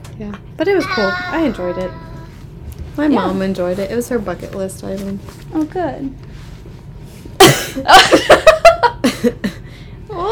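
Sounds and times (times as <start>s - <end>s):
speech: 0.2s - 2.1s, 3.0s - 6.2s, 7.8s - 8.4s, 9.2s - 9.5s
sharp explosive cough: 7.4s - 7.9s
smaller sputtering coughs: 7.4s - 8.2s.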